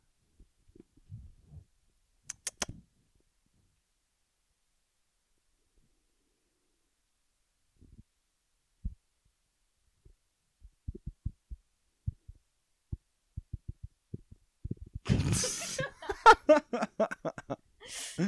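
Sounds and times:
soft dull taps: 10.0 - 15.0
people talking: 15.1 - 16.8, 17.9 - 18.2
people laughing: 15.1 - 18.2.

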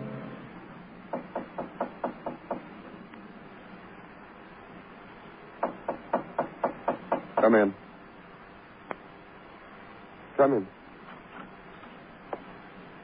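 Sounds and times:
knocking on a door: 1.1 - 2.7, 5.6 - 7.6
speech: 7.5 - 7.8, 10.4 - 10.8.

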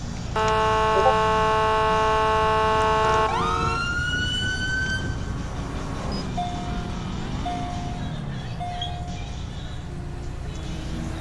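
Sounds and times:
police car low engine rumble: 0.0 - 11.1
police car horn blasting: 0.3 - 4.2
police car siren winding up into a wail: 0.4 - 5.3.

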